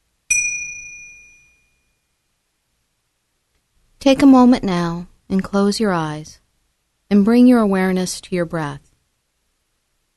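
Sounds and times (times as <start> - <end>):
bright metallic meditation chime ringing: 0.3 - 2.2
speech: 4.0 - 6.4, 7.1 - 8.9.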